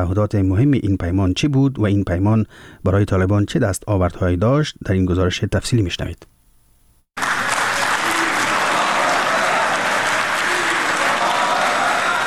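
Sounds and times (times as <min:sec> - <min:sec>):
speech: 0:00.0 - 0:06.3
applause in a hotel hall after a signing ceremony: 0:07.2 - 0:12.2.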